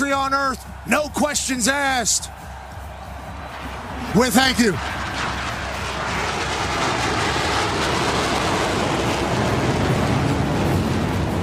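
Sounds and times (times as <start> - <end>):
speech: 0.3 - 2.5, 4.1 - 5.3
B-2 stealth bomber roaring over a college football game at the Rose Bowl: 3.4 - 11.4.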